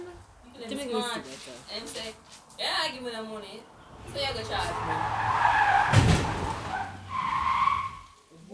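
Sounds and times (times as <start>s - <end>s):
road noise roar: 0.1s - 8.2s
car tires squealing in a skid in a road accident: 3.7s - 8.2s
loud impact in a road accident: 3.9s - 7.1s.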